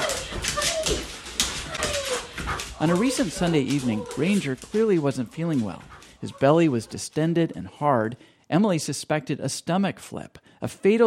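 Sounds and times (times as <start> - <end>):
Bernese Mountain Dog eagerly greeting, whimpering and whining: 0.0 - 4.7, 5.5 - 7.2
rustling movement: 0.0 - 7.7
speech: 2.8 - 11.0.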